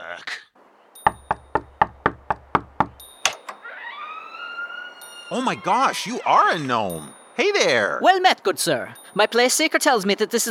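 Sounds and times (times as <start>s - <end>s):
speech: 0.2s - 0.5s, 5.3s - 10.4s
knocking on the front door of a tavern: 1.1s - 3.0s
drawn-out rising door creak: 1.1s - 7.2s.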